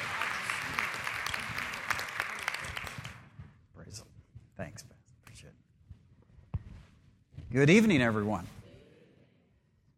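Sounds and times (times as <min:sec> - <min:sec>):
audience applause: 0:00.0 - 0:03.4
speech: 0:07.6 - 0:08.6.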